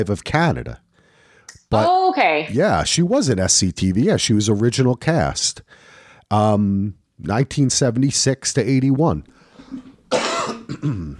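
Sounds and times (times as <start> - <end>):
speech: 0.0 - 0.8, 1.7 - 11.1
person coughing: 9.6 - 11.1.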